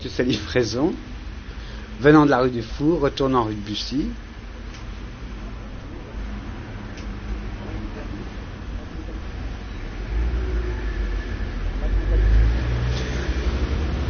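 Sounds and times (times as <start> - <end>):
speech: 0.0 - 1.2, 2.0 - 4.2
steady traffic noise on a busy street: 0.0 - 14.0
wholesale meat truck rumbling past on a busy street near Boulevard Saint-Germain: 7.5 - 14.0.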